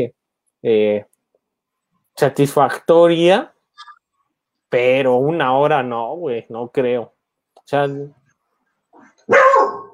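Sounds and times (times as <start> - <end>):
speech: 0.0 - 1.1, 2.2 - 3.9, 4.7 - 8.2
dog bark: 9.0 - 9.9.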